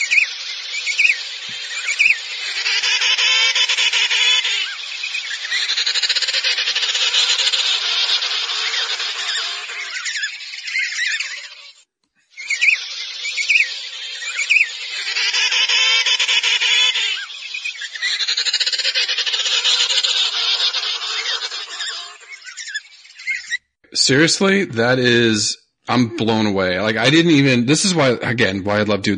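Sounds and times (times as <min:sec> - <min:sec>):
emperor penguin colony chirping and braying calls: 0:00.0 - 0:11.8, 0:12.4 - 0:23.6
speech: 0:24.1 - 0:29.1.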